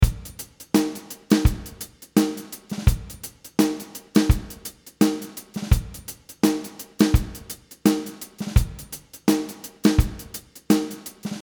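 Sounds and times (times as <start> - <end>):
drum in a drum chamber: 0.0 - 11.4.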